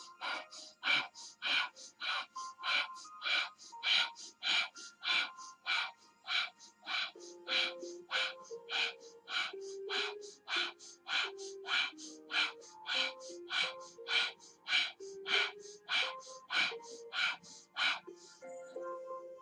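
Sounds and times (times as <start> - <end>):
forceful sharp breaths of a breathing exercise: 0.0 - 18.9.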